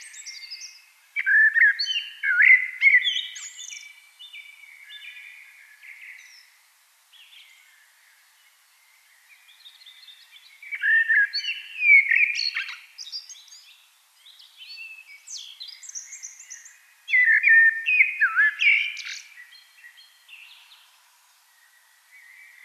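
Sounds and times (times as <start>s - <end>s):
Eurasian blackbird Turdus merula song with fluted phrase, twittering and rich warble: 0.0s - 6.5s, 9.4s - 13.7s, 14.3s - 20.8s.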